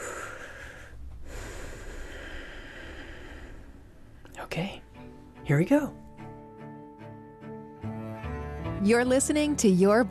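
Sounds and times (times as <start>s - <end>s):
deep relaxing breath: 0.0s - 4.3s
speech: 4.4s - 4.9s, 5.5s - 6.0s, 8.8s - 10.0s.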